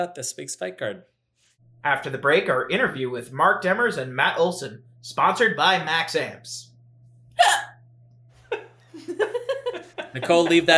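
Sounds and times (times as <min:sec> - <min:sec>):
speech: 0:00.0 - 0:01.2, 0:01.8 - 0:06.7, 0:09.0 - 0:10.7
faint steady hum: 0:01.4 - 0:10.7
hiccups: 0:07.4 - 0:07.8
laughter: 0:08.4 - 0:10.7.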